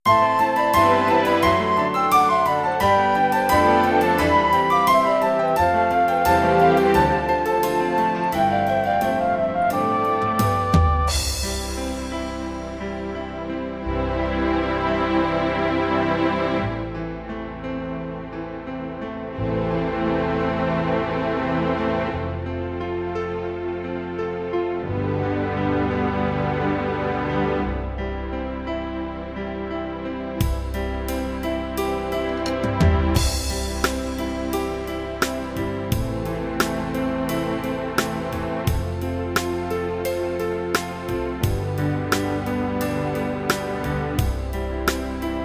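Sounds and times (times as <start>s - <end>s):
classic piano ballad: 0.0s - 45.4s.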